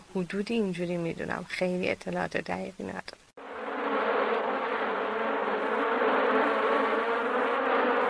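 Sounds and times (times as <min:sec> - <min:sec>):
speech: 0:00.1 - 0:03.2
many honeybees buzzing together: 0:03.4 - 0:08.0.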